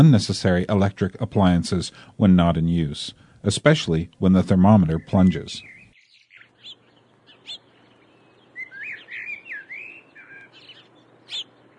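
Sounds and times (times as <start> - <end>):
speech: 0.0 - 5.7
steady low hum: 0.0 - 11.7
birds chirping and singing: 4.3 - 11.7.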